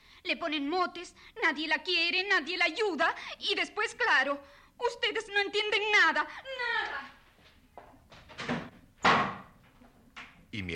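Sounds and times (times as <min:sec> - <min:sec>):
speech: 0:00.3 - 0:07.1, 0:10.5 - 0:10.7
door slamming shut: 0:08.2 - 0:09.6.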